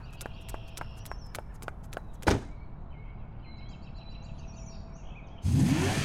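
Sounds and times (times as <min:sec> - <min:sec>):
woman running to her car: 0:00.0 - 0:02.5
light footsteps: 0:00.0 - 0:02.6
faint birdsong: 0:00.0 - 0:05.6.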